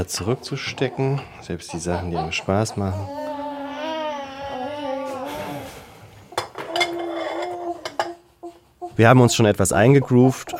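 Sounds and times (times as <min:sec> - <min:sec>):
dishes and cutlery clinking during washing up in a small fitted kitchen: 0:00.0 - 0:02.7, 0:06.3 - 0:09.4
speech: 0:00.0 - 0:03.2, 0:09.0 - 0:10.5
infant fussing and babbling: 0:00.6 - 0:05.7, 0:06.6 - 0:10.5.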